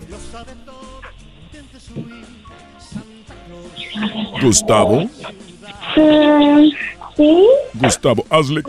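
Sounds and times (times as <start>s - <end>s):
household noise: 0.0s - 8.1s
other voices: 0.0s - 8.6s
speech: 0.3s - 8.6s
child imitating a little dog barking with yappy woofs: 5.8s - 7.7s.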